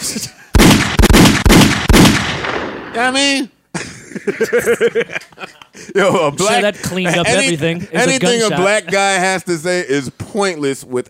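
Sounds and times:
speech: 0:00.1 - 0:01.0, 0:03.0 - 0:11.0
loud gunshots with rumbling echo: 0:00.5 - 0:03.1
laughter: 0:03.7 - 0:09.5.

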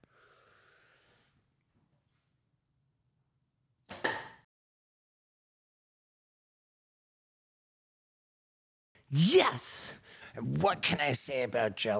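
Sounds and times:
arrow striking something with a sharp thwack: 0:03.9 - 0:04.4
speech: 0:09.1 - 0:11.9.

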